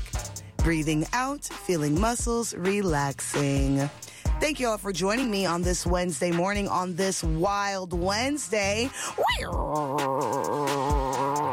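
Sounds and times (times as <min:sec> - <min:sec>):
speech: 0:00.6 - 0:10.7
person imitating a strong tiger growl: 0:09.2 - 0:11.5.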